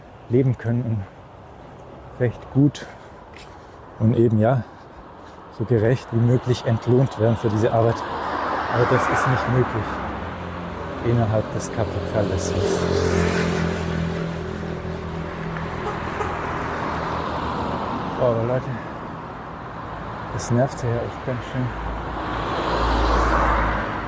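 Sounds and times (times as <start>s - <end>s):
road traffic with cars passing: 0.0s - 24.0s
speech: 0.3s - 1.2s, 2.2s - 4.7s, 5.6s - 10.0s, 11.0s - 13.2s, 18.2s - 18.9s, 20.4s - 21.9s
engine droning: 10.6s - 18.7s.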